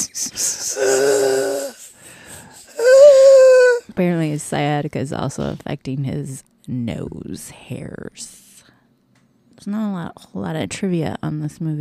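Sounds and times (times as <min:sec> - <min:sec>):
heavy wheezing breathing into a microphone: 0:00.0 - 0:03.8
speech: 0:04.0 - 0:08.4, 0:09.6 - 0:11.7.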